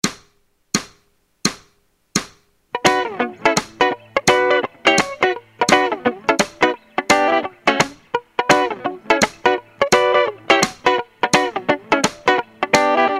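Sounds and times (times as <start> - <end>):
Afrobeats guitar: 2.7 - 13.1.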